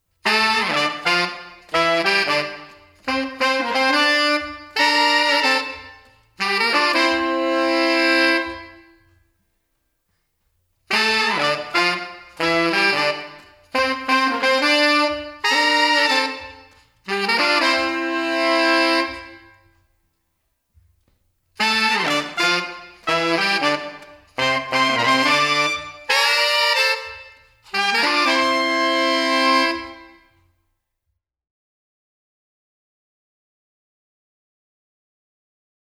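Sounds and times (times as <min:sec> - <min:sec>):
horn section with plate reverb: 0:00.2 - 0:09.2, 0:10.9 - 0:19.8, 0:21.6 - 0:30.4.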